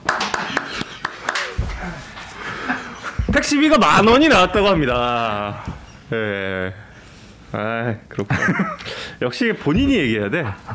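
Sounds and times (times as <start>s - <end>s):
hand clapping: 0.0s - 2.0s
people laughing: 0.0s - 5.6s, 8.2s - 9.1s
speech: 3.5s - 6.8s, 7.5s - 10.7s.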